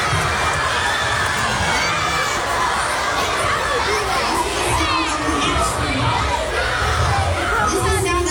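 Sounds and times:
large group of children cheering and shouting: 0.0 - 8.2.

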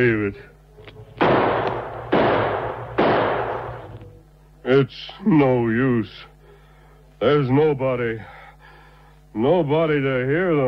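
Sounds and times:
speech: 0.0 - 0.6, 4.6 - 6.3, 7.2 - 8.4, 9.3 - 10.6
revolver gunshots: 1.2 - 4.0.

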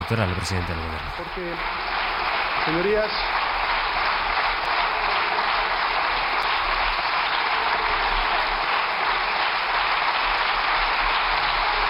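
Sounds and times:
parliamentary deputies and government members clapping in the chamber: 0.0 - 11.8
speech: 0.1 - 1.8, 2.6 - 3.4.

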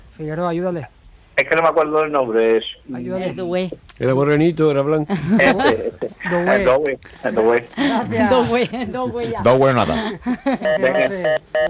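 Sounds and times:
speech: 0.2 - 11.6
laughter: 5.1 - 11.4
electronic beeps of telephone call line cutting off: 10.6 - 11.6.

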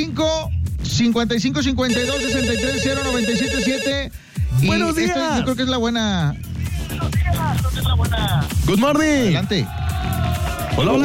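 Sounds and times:
speech: 0.0 - 10.2, 10.8 - 11.0
music: 0.0 - 11.0
telephone ringing for an incoming call: 1.9 - 4.2.

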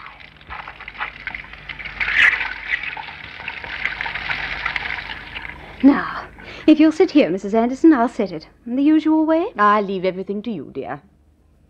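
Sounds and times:
running water rinsing hair at a hairdresser's: 0.0 - 6.8
speech: 5.8 - 11.1.

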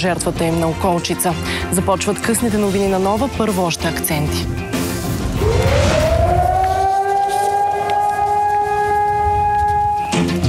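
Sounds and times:
speech: 0.0 - 4.8
air raid siren wailing in commemoration: 5.1 - 10.4.

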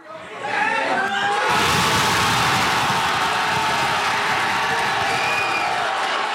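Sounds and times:
pub watch party crowd cheering and shouting at a soccer goal: 0.0 - 6.3.

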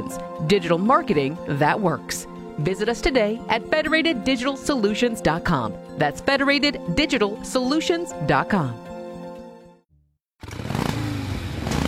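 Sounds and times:
speech: 0.1 - 8.9
motorcycle engine starting and revving loudly: 10.4 - 11.8.

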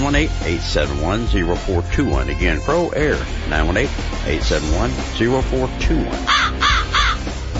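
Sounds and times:
speech: 0.0 - 6.7
crow cawing: 6.3 - 7.4.

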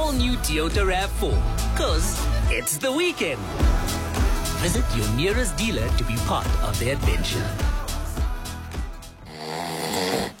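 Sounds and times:
speech: 0.1 - 4.0, 4.6 - 7.7
man snoring loudly: 9.0 - 10.3.

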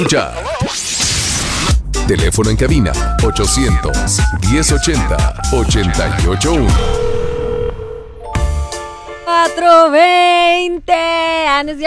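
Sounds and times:
speech: 0.0 - 0.8, 2.1 - 7.2, 9.4 - 11.8
radio station song-request alert jingle: 2.9 - 9.3.

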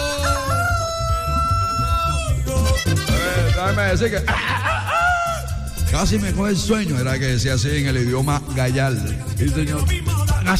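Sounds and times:
rooster crowing in a long drawn-out call: 0.0 - 2.4
laughter: 3.0 - 5.6
speech: 3.7 - 4.7, 5.9 - 10.5.

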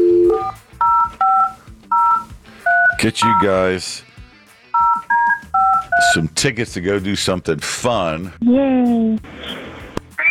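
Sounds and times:
telephone dual-tone key beeps while dialing: 0.0 - 3.6, 4.8 - 6.2
speech: 3.0 - 4.1, 6.0 - 9.5.

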